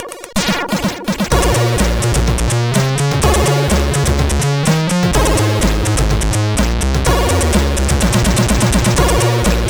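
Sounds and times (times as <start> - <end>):
SID CSG8580R5 sound chip noise: 0.4 - 9.6.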